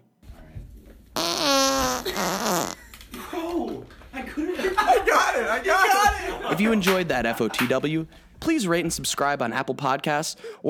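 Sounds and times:
loud drawn-out fart: 0:01.2 - 0:03.0
people chuckling: 0:01.9 - 0:08.2
speech: 0:02.0 - 0:02.8, 0:04.4 - 0:10.6.

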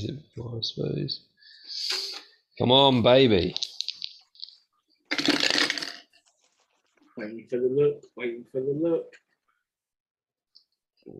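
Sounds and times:
speech: 0:00.0 - 0:03.6, 0:07.2 - 0:09.2
hard dice clattering and tumbling across a surface: 0:05.1 - 0:06.1.

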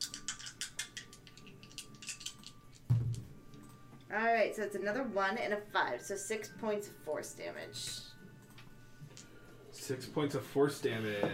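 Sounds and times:
two ten-sided dice clattering and rattling across a surface: 0:00.0 - 0:02.6
speech: 0:04.1 - 0:08.0, 0:09.9 - 0:11.3.

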